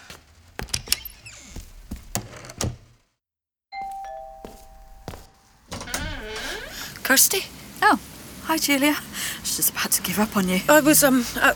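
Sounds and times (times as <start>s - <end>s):
doorbell bright electronic chime: 3.7s - 5.7s
speech: 7.1s - 11.5s.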